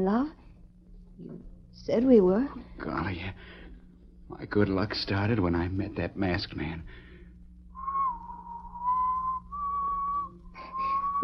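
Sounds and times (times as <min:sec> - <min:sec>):
speech: 0:00.0 - 0:00.4, 0:01.2 - 0:03.6, 0:04.3 - 0:07.0
low steady hum: 0:00.0 - 0:11.2
person whistling a tune off-key: 0:07.8 - 0:11.2.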